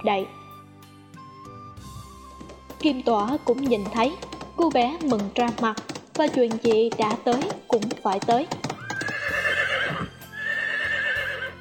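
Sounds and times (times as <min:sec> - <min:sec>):
speech: 0:00.0 - 0:00.4, 0:02.8 - 0:08.6
horse hoof clops coming to a stop: 0:02.2 - 0:10.1
horse neighing: 0:08.8 - 0:11.5.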